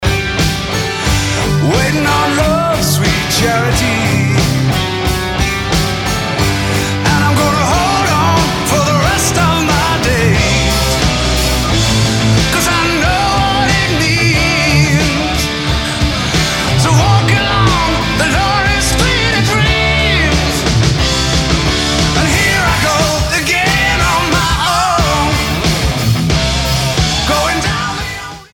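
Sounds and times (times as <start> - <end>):
electric guitar through a JCM800 amplifier with four G12T75 speakers: 0.0 - 28.5.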